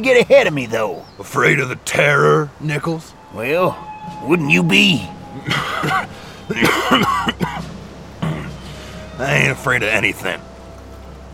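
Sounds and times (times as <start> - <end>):
speech: 0.0 - 7.6, 9.2 - 10.5
man coughing harshly in hacking bursts: 5.5 - 8.6.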